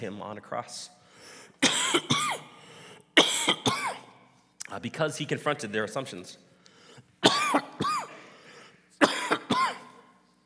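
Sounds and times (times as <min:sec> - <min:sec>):
speech: 0:00.0 - 0:02.4, 0:04.7 - 0:06.5
person coughing and clearing throat: 0:01.6 - 0:02.5, 0:03.2 - 0:04.1, 0:07.2 - 0:08.4, 0:09.0 - 0:10.0.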